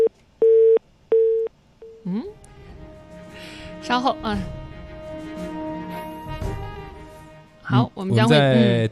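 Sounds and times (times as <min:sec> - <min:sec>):
telephone line tone while a call is trying to connect: 0:00.0 - 0:02.0
speech: 0:03.9 - 0:04.6, 0:07.7 - 0:08.8.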